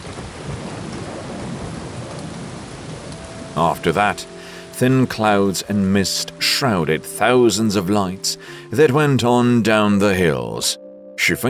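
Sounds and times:
heavy rain downpour: 0:00.0 - 0:09.0
speech: 0:03.6 - 0:11.4.

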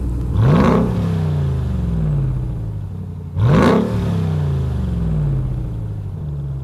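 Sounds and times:
392 V8 engine with stock exhaust revving: 0:00.0 - 0:06.6.

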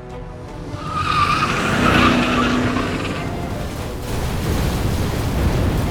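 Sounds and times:
tires screeching in a skid: 0:00.4 - 0:05.8.

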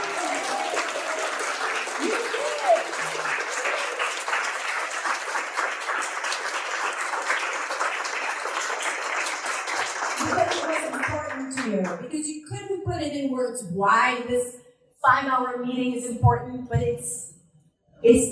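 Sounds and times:
crowd applauding: 0:00.0 - 0:12.0
speech: 0:13.5 - 0:14.6, 0:15.2 - 0:17.2, 0:18.0 - 0:18.3.

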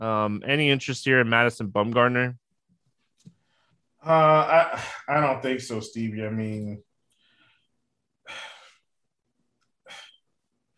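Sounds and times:
speech: 0:00.0 - 0:02.4, 0:04.0 - 0:06.9
person heavy breathing: 0:07.1 - 0:08.9, 0:09.8 - 0:10.7.

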